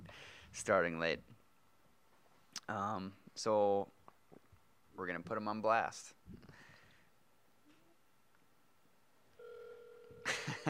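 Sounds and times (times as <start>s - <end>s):
speech: 0.5s - 1.4s, 2.7s - 4.0s, 5.0s - 6.7s
steady electronic phone tone of a telephone call connecting: 9.4s - 10.3s.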